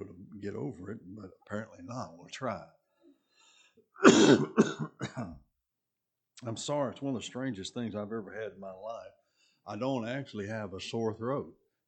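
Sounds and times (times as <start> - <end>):
speech: 0.0 - 2.8, 4.0 - 5.4, 6.4 - 11.8
harsh chest coughs: 4.0 - 5.4.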